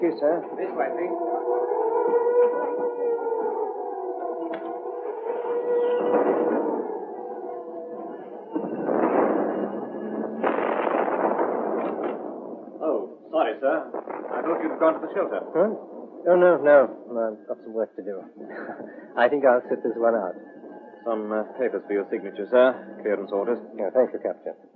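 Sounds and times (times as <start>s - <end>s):
speech: 0.0s - 3.5s, 13.6s - 24.7s
air raid warning siren: 0.0s - 24.2s
broadband bursts and crackles: 8.1s - 19.2s.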